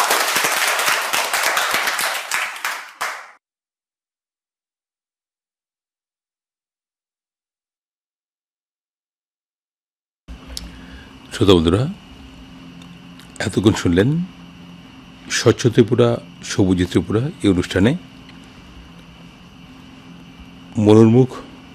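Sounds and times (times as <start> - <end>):
audience of school students clapping: 0.0 - 3.4
speech: 11.4 - 12.0, 13.4 - 14.4, 15.3 - 18.1, 20.8 - 21.5.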